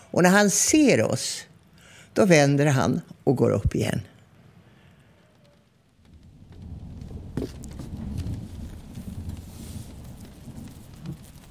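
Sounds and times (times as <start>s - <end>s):
speech: 0.2s - 1.5s, 2.2s - 4.1s
steady rain falling: 5.1s - 11.4s
low rumble: 5.9s - 11.4s.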